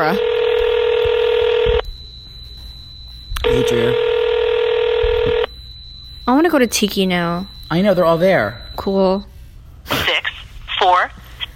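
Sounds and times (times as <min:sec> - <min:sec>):
speech: 0:00.0 - 0:00.4, 0:03.6 - 0:04.1, 0:06.3 - 0:10.0
electronic phone keypad tone: 0:00.0 - 0:01.8, 0:03.4 - 0:05.5
faint high whine: 0:00.0 - 0:11.1
soft low thumps: 0:00.6 - 0:03.4, 0:05.0 - 0:06.2.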